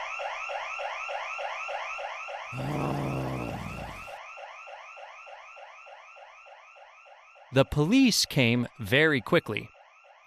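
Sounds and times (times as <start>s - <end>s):
museum alarm wailing in up-and-down sweeps: 2.6s - 4.1s
speech: 7.5s - 9.7s.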